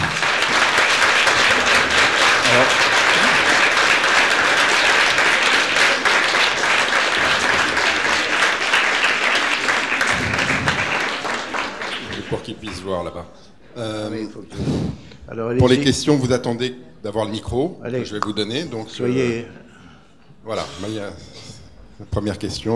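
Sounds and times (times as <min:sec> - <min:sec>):
audience applause: 0:00.0 - 0:13.0
speech: 0:02.6 - 0:02.8, 0:12.6 - 0:19.6, 0:20.4 - 0:22.7.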